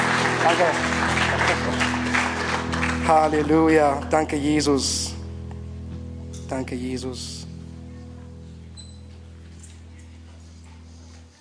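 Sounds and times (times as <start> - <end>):
audience applauding: 0.0 - 4.7
sustained low keyboard tone: 0.0 - 11.0
speech: 0.4 - 1.0, 3.1 - 5.2, 6.5 - 7.4.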